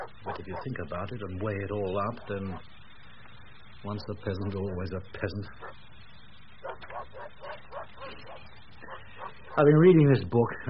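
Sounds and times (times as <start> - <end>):
dogs barking: 0.0 - 1.1, 1.8 - 2.8, 5.5 - 5.9, 6.5 - 9.8
low hum: 0.0 - 10.6
speech: 0.2 - 2.8, 3.8 - 5.9, 9.6 - 10.6.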